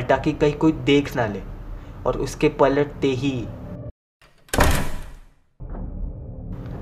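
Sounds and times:
speech: 0.1 - 3.6
door banging shut: 4.2 - 5.4.

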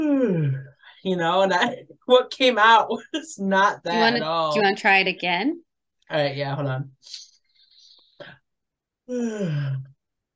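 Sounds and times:
speech: 1.0 - 7.2, 9.1 - 9.9
person yawning: 9.1 - 10.0.

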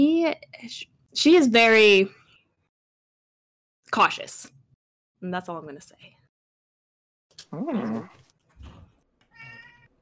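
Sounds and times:
speech: 0.0 - 2.2, 3.9 - 4.6, 5.2 - 6.2, 7.5 - 8.2
cat meowing: 9.3 - 10.0.

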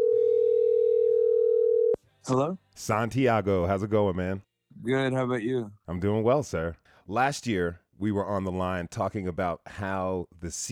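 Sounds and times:
electronic telephone ringing tone on an outgoing call: 0.0 - 2.0
speech: 2.3 - 10.7.

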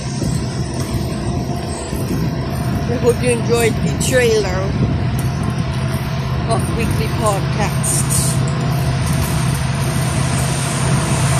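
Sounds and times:
train running alongside with rattling rumble: 0.0 - 11.3
speech: 2.9 - 4.9, 6.5 - 8.2.

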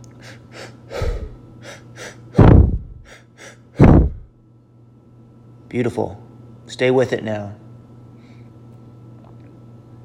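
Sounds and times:
rapid rhythmic breathing exercise: 0.1 - 4.3
speech: 5.7 - 7.6.

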